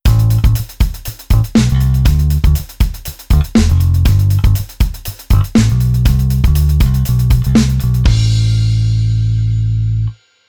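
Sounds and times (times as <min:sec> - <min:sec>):
laid-back bass: 0:00.0 - 0:00.7, 0:01.3 - 0:02.6, 0:03.3 - 0:04.7, 0:05.3 - 0:10.1.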